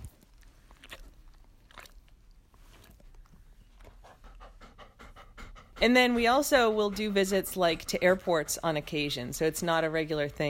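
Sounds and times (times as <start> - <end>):
dog panting: 2.7 - 10.4
speech: 5.8 - 10.4.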